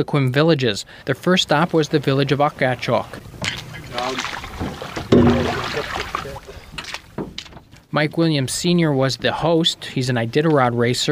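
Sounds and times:
speech: 0:00.0 - 0:04.4, 0:05.1 - 0:06.1, 0:07.9 - 0:11.1
river water rushing and splashing around a small boat: 0:01.0 - 0:07.2.

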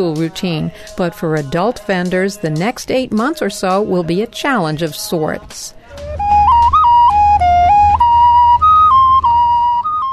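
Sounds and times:
speech: 0:00.0 - 0:06.1
ceramic ocarina playing a slow breathy melody: 0:06.0 - 0:10.1.

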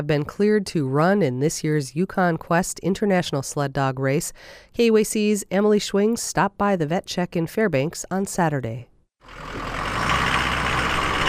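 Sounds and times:
speech: 0:00.0 - 0:09.7
truck engine rumbling as it pulls into a warehouse in South Fairbanks: 0:09.2 - 0:11.2.

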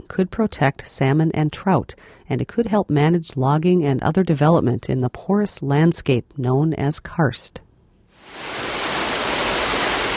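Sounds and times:
speech: 0:00.1 - 0:07.6
stream flowing down a gentle waterfall into a limestone pit in Alaska: 0:08.2 - 0:10.1.

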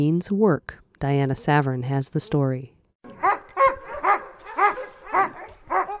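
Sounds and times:
speech: 0:00.0 - 0:02.8
Alaskan husky sled dogs barking in Denali National Park: 0:03.1 - 0:05.9.

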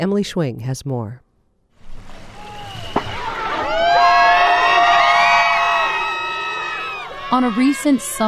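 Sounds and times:
speech: 0:00.0 - 0:01.2, 0:07.3 - 0:08.2
large outdoor crowd cheering at a boat race: 0:01.9 - 0:08.2
overlapping shouts and high whoops: 0:02.4 - 0:08.2.

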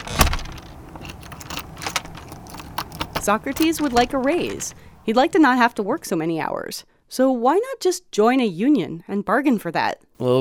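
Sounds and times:
loose coins jingling as a man scoops them up: 0:00.0 - 0:05.3
speech: 0:03.2 - 0:10.3.

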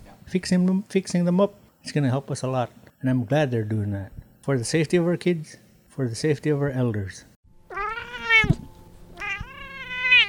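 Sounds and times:
speech: 0:00.3 - 0:07.3
gray cat meowing: 0:07.7 - 0:08.6, 0:09.2 - 0:10.2.

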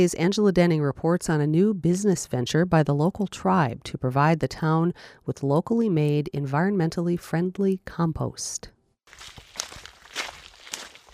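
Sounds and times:
speech: 0:00.0 - 0:09.4
footsteps walking along a road into a landfill: 0:09.1 - 0:11.1.

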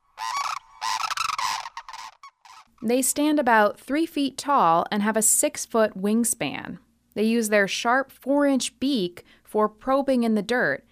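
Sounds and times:
sandhill crane calling: 0:00.0 - 0:02.8
speech: 0:02.8 - 0:10.9.

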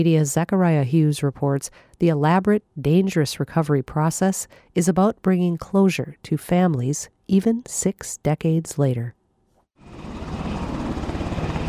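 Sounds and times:
speech: 0:00.0 - 0:09.2
helicopter rotor drone flying from a joint base in Alaska: 0:09.8 - 0:11.6.

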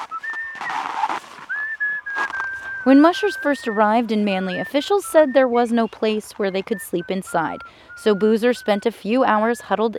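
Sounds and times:
man whistling a tune while feeding sled dogs: 0:00.0 - 0:05.7, 0:06.7 - 0:08.9
speech: 0:02.8 - 0:09.9.

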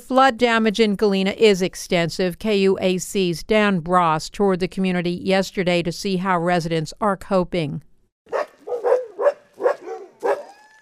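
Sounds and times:
speech: 0:00.1 - 0:07.9
sled dogs barking in a flooded dog yard: 0:08.3 - 0:10.7.

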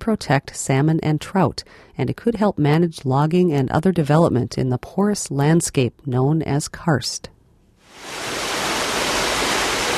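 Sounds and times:
speech: 0:00.0 - 0:07.4
stream cascading down a gentle waterfall into a limestone pit in Alaska: 0:07.9 - 0:09.9.

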